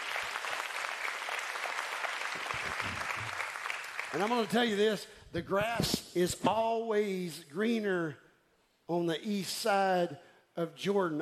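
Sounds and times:
audience applauding steadily: 0.0s - 4.8s
speech: 4.1s - 8.2s, 8.9s - 11.2s.

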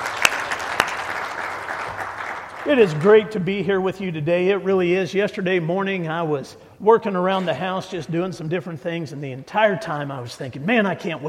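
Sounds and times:
audience applauding: 0.0s - 3.6s
speech: 2.6s - 11.2s.

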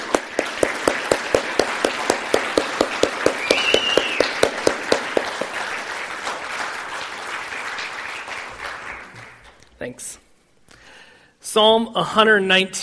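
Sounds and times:
audience applauding standing military veterans: 0.0s - 9.6s
sharp claps: 0.0s - 9.6s
speech: 11.6s - 12.8s.

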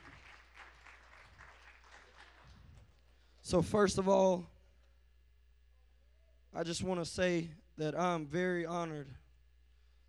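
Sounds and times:
church audience clapping in praise: 0.0s - 2.8s
speech: 3.5s - 4.5s, 6.6s - 9.2s.

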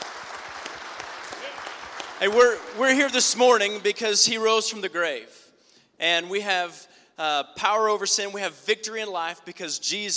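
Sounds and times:
large audience applauding at an Easter morning church service: 0.0s - 2.8s
speech: 2.2s - 5.4s, 6.0s - 10.1s.

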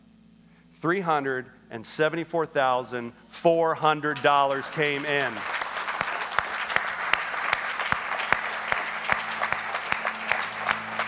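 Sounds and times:
speech: 0.8s - 5.5s
large church audience clapping and applauding: 3.8s - 11.0s.

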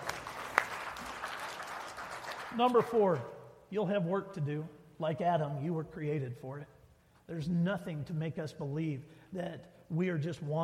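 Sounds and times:
audience applause: 0.0s - 2.9s
speech: 2.5s - 10.6s.

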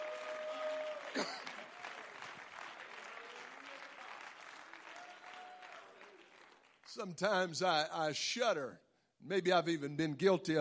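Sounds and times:
audience clapping: 0.0s - 7.3s
speech: 1.2s - 1.5s, 7.0s - 10.6s.

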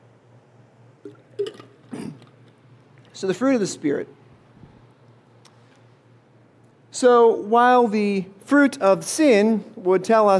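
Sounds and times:
low steady hum: 0.0s - 10.3s
preacher gulping and swallowing water: 1.0s - 3.1s
speech: 3.2s - 4.2s, 7.0s - 10.3s.

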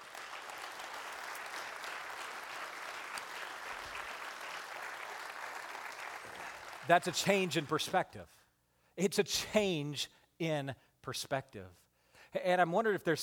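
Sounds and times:
applause from a sizable audience: 0.0s - 7.8s
speech: 6.9s - 8.4s, 9.0s - 13.2s.

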